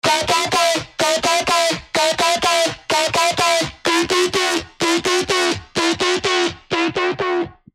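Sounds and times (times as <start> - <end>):
drum fill: 0.0 - 7.5.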